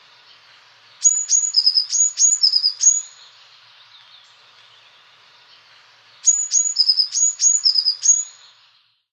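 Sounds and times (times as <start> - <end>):
soft hiss: 0.0 - 9.1
Eurasian blue tit song: 1.0 - 5.0, 6.2 - 8.7.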